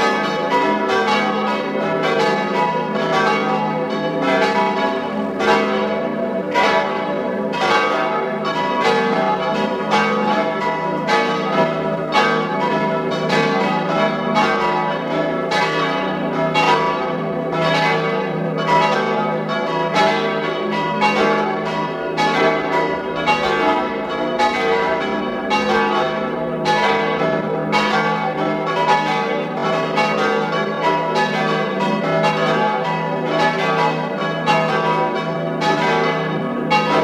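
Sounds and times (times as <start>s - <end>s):
parish church bells ringing in a Tyrolean village at noon: 0.0s - 37.0s.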